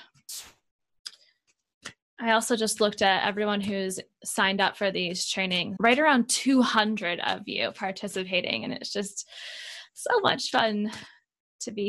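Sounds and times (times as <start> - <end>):
deck of cards shuffling: 0.3 - 0.6
speech: 2.2 - 11.8.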